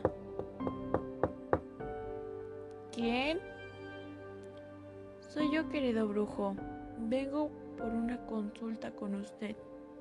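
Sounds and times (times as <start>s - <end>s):
sharp knocks on a door: 0.0s - 1.7s
soft sustained musical tone: 1.8s - 10.0s
speech: 3.0s - 3.5s, 5.3s - 9.7s.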